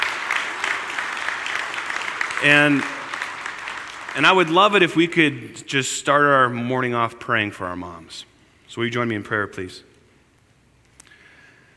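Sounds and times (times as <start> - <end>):
sustained cheer over applause: 0.0 - 4.4
large crowd applauding in a roomy space: 0.0 - 5.2
speech: 2.4 - 3.0, 4.2 - 9.9.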